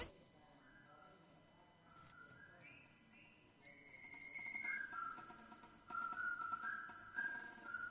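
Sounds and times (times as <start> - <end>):
jaunty military march tune from a film soundtrack whistled: 2.1 - 7.8.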